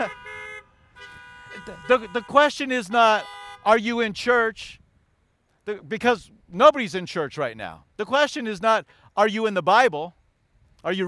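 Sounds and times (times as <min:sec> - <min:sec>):
speech: 0:00.0 - 0:00.2, 0:01.6 - 0:04.8, 0:05.6 - 0:10.2, 0:10.8 - 0:11.0
car horns honking: 0:00.0 - 0:04.1.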